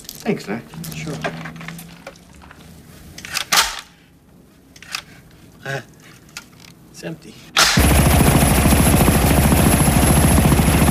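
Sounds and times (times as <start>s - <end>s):
speech: 0.2s - 1.6s, 5.6s - 6.0s, 7.0s - 8.2s
police helicopter hovering: 7.8s - 10.8s.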